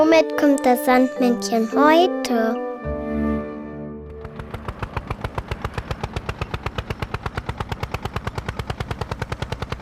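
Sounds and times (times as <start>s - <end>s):
speech: 0.1s - 2.7s
tractor engine chugging: 4.2s - 9.7s.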